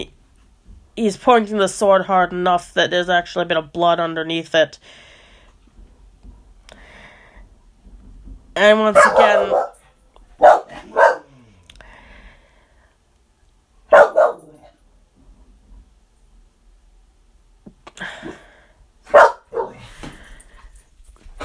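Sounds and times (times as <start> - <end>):
speech: 1.0 - 5.1, 8.6 - 9.7
dog barking: 8.9 - 9.8, 10.4 - 11.4, 13.9 - 14.7, 19.1 - 19.8.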